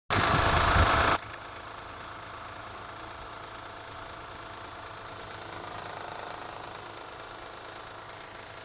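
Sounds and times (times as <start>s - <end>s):
3.0 V6 engine startup noise: 0.1s - 1.3s, 5.2s - 6.8s
3.0 V6 engine tapping noise: 0.1s - 8.6s.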